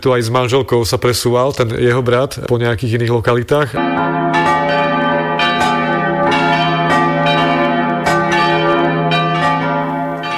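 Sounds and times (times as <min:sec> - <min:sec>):
speech: 0:00.0 - 0:04.6
church bells pealing: 0:03.8 - 0:10.3.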